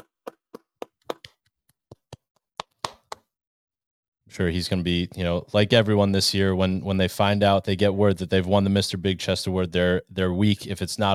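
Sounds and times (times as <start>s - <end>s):
hands clapping: 0.0s - 3.3s
speech: 4.3s - 11.1s.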